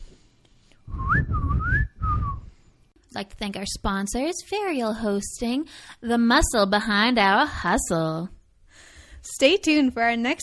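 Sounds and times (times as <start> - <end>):
person whistling a short wavering tune: 0.9 - 2.5
speech: 3.2 - 8.4, 9.2 - 10.4.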